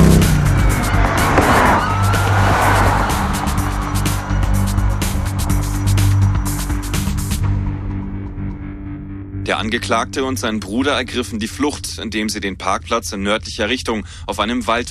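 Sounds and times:
motorcycle tires squealing and skidding: 0.0 - 6.6
motorcycle engine roaring in a high-speed police chase: 0.0 - 7.6
speech: 9.6 - 14.8.

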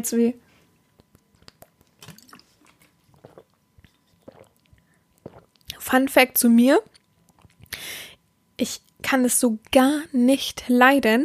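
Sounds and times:
speech: 0.0 - 0.4, 5.8 - 6.9, 8.6 - 11.2
person sipping water: 1.0 - 5.8, 6.9 - 7.8
soft swallowing gulps: 1.0 - 5.8, 7.1 - 7.7
wet mouth clicks: 1.0 - 5.8, 6.9 - 7.8.

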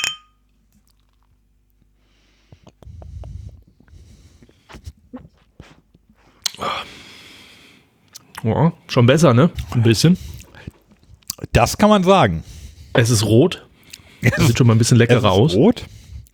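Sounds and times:
small clicks and glassy clinks: 0.0 - 0.4
gulping and slurping from a glass: 2.5 - 6.9, 8.2 - 11.6, 13.8 - 16.3
speech: 8.4 - 10.3, 11.6 - 16.0.

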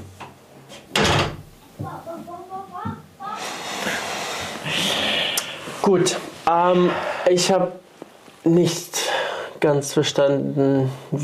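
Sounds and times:
door shutting with a solid thud: 0.9 - 1.5
speech: 1.9 - 3.0, 4.7 - 7.8, 8.4 - 9.0, 9.6 - 11.2.

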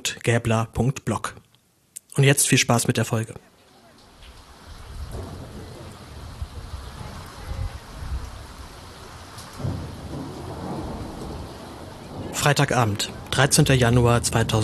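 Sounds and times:
speech: 0.2 - 1.4, 2.2 - 3.5, 12.5 - 14.6
steady dense rainfall: 1.6 - 14.6
low rumbling: 4.1 - 14.6.

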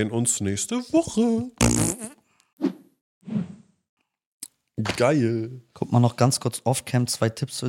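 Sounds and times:
speech: 0.0 - 2.2, 5.0 - 7.6
blaring fart sounds into the microphone: 1.6 - 2.2.

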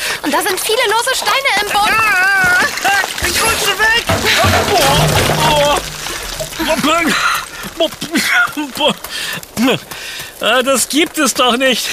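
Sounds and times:
speech: 0.2 - 5.8, 6.4 - 11.9
buckets of water splashing and pouring over a person: 1.1 - 9.3.

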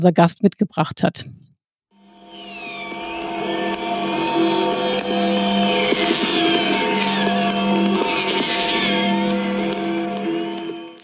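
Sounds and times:
speech: 0.0 - 1.5
Freedom Bell at the Reichstag tolling with a deep lingering hum: 2.0 - 11.0
rockets and firecrackers crackling and popping outdoors: 5.0 - 11.0.

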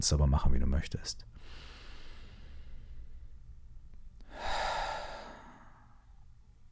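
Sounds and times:
speech: 0.0 - 1.7
slow breathing in through the nose and out through the mouth: 1.3 - 3.5, 4.2 - 6.3.

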